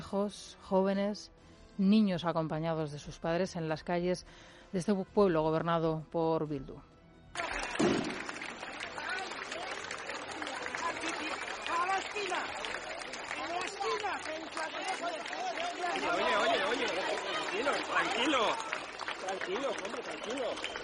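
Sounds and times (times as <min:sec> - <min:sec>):
speech: 0:00.1 - 0:06.9
crowd applause: 0:07.3 - 0:20.8
crowd chatter in a town street: 0:07.4 - 0:20.8
sharp firecracker bang: 0:07.7 - 0:08.6.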